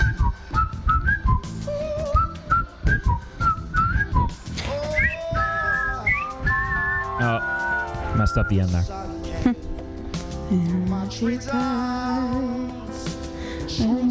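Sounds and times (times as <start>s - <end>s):
bright whistled melody of short bouncy phrases: 0.0s - 9.1s, 10.9s - 12.0s
live band with steady drums and bass: 0.0s - 14.0s
speech: 8.4s - 9.6s, 10.5s - 11.9s, 13.8s - 14.0s.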